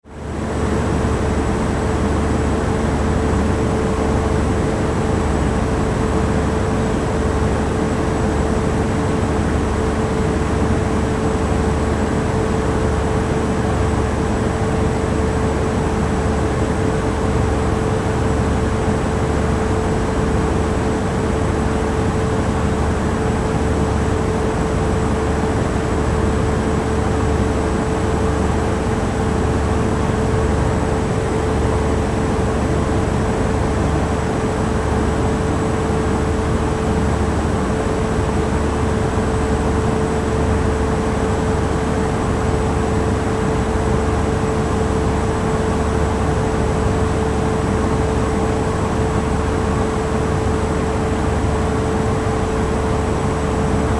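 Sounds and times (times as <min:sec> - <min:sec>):
large car ferry machine control room machinery: 0:00.3 - 0:53.9.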